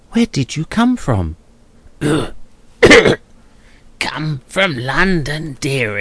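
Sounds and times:
speech: 0:00.2 - 0:01.4, 0:02.0 - 0:03.2, 0:04.1 - 0:06.0
dry rattling cough: 0:02.0 - 0:03.2.

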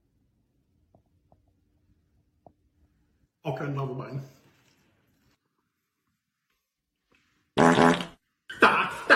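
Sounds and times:
speech: 0:03.5 - 0:04.4
fart: 0:07.6 - 0:08.2.

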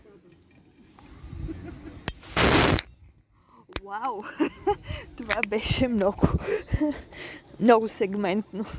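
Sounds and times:
beer bottle opening pop and fizzing hiss: 0:02.1 - 0:02.9
speech: 0:03.9 - 0:04.5, 0:05.2 - 0:08.7.

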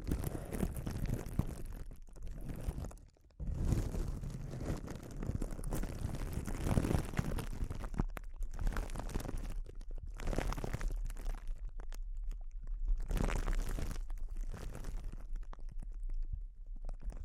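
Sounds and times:
soft crinkling: 0:00.0 - 0:17.2.

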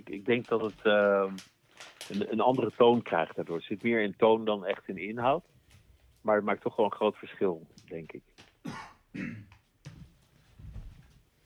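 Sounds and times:
speech: 0:00.1 - 0:05.5, 0:06.2 - 0:09.5
person coughing while rolling cigarettes: 0:08.6 - 0:09.6.

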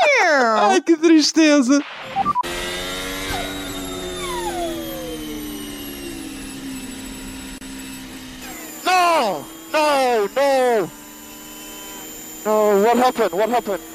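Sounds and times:
speech: 0:00.3 - 0:02.4, 0:12.4 - 0:13.9
race car engine losing power with a whining drone: 0:01.9 - 0:09.9.

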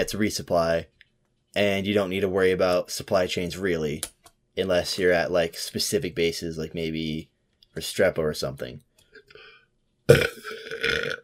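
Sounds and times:
speech: 0:00.0 - 0:09.5, 0:10.1 - 0:11.2
loud burp: 0:10.1 - 0:11.2.

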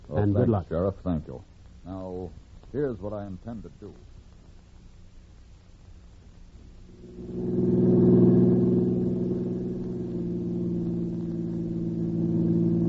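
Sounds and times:
speech: 0:00.2 - 0:04.1
car engine droning at cruising speed: 0:06.9 - 0:12.8.

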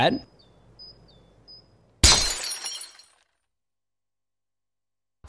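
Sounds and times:
speech: 0:00.0 - 0:00.3
glass bottle breaking: 0:02.0 - 0:03.3.

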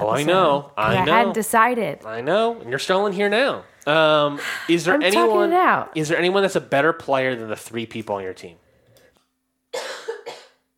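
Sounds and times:
speech: 0:00.1 - 0:08.6
person coughing: 0:09.7 - 0:10.7.

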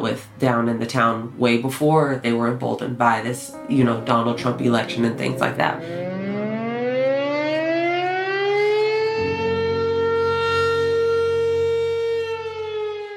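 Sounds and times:
speech: 0:00.0 - 0:06.1
civil-defense-style sundown siren wailing: 0:05.7 - 0:13.1.

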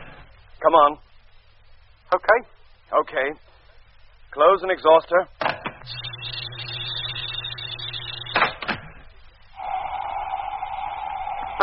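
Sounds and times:
speech: 0:00.6 - 0:01.1, 0:02.1 - 0:03.5, 0:04.3 - 0:06.0
mechanical airlock door on a truck humming and whining: 0:05.5 - 0:11.6
steady electronic drone: 0:05.8 - 0:11.6.

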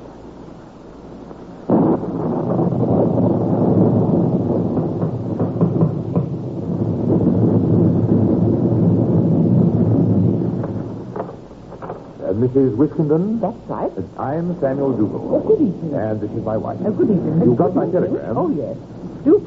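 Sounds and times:
gusting howling wind of a storm on a January night: 0:00.0 - 0:19.4
deep rumbling thunder: 0:01.3 - 0:19.4
speech: 0:12.5 - 0:19.4.

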